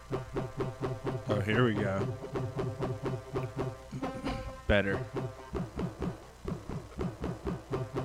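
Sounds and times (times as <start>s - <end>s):
synth with band-passed chorus and low end cut: 0.0s - 8.0s
speech: 1.4s - 2.5s, 4.7s - 5.3s.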